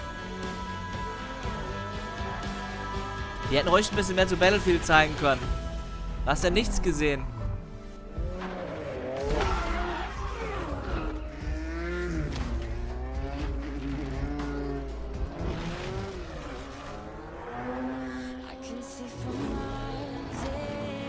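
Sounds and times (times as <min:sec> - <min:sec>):
deep steady rumble: 0:00.0 - 0:18.8
car engines revving in a racing video game trailer: 0:00.0 - 0:21.0
speech: 0:03.5 - 0:05.6, 0:06.3 - 0:07.4.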